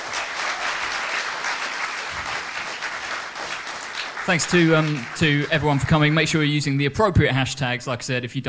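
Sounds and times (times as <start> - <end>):
applause from a sizable audience: 0.0 - 6.7
speech: 4.3 - 8.4.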